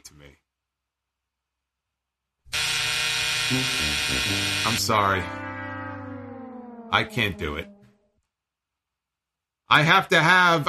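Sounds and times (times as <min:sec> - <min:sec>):
speech: 0:00.0 - 0:00.4, 0:03.5 - 0:05.5, 0:06.9 - 0:07.7, 0:09.7 - 0:10.6
loud harsh buzzer: 0:02.5 - 0:08.1.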